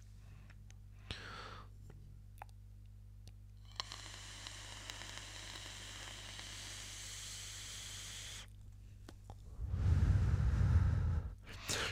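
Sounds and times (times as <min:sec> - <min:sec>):
vape coil sizzling and crackling while inhaling: 0:03.6 - 0:08.5
low rushing burst: 0:09.6 - 0:11.4.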